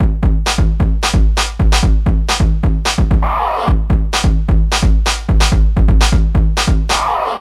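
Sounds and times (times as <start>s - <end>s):
funk slide drum loop: 0.0s - 7.3s.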